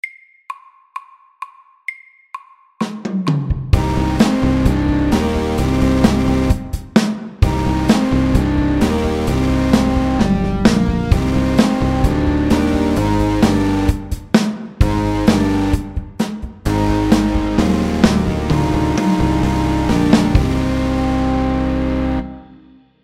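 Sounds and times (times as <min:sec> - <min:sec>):
fast metal rock music: 0:03.8 - 0:16.0, 0:16.7 - 0:22.2.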